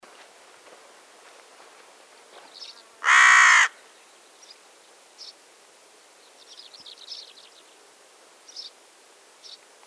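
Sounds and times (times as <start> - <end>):
carrion crow Corvus corone cawing: 3.0 - 3.8.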